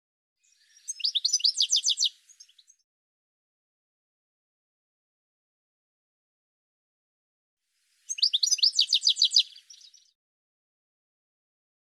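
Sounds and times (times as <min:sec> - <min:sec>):
bird chirping: 0:00.4 - 0:02.8, 0:08.1 - 0:10.2.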